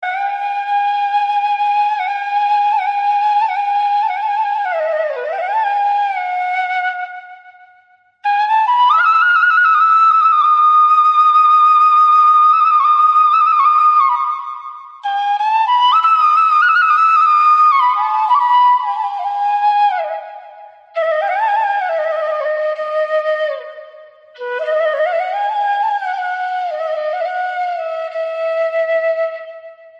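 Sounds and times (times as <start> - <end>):
flute melody: 0.0 - 29.9.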